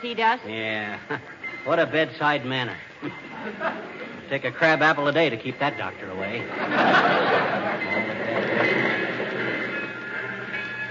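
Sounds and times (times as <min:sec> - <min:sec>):
speech: 0:00.0 - 0:08.7
laughter: 0:00.8 - 0:01.6, 0:03.0 - 0:05.1, 0:06.2 - 0:10.0
train pulling into a station with rolling cars: 0:05.5 - 0:10.8.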